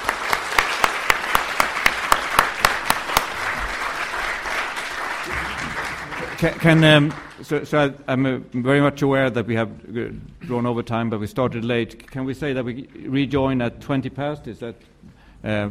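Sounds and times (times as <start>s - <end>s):
audience applause at a conference: 0.0s - 7.5s
speech: 6.4s - 15.6s.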